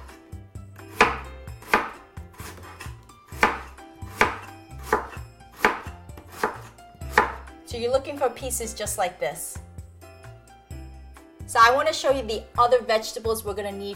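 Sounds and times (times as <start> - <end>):
knife slicing Asian turnip into thin slices on a cutting board: 0.9 - 7.4
speech: 7.8 - 9.6, 11.5 - 13.9.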